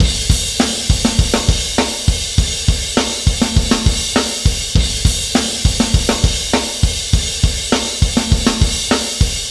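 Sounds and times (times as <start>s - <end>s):
trashy indie rock drums: 0.0s - 9.4s.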